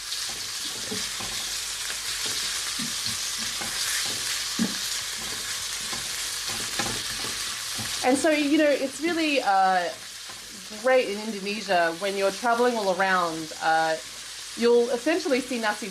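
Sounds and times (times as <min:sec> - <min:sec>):
bite-sized chicken pieces frying in a pan: 0:00.0 - 0:15.8
scraping and stirring knocks in a pan: 0:02.2 - 0:08.0
speech: 0:08.0 - 0:10.0, 0:10.7 - 0:15.8.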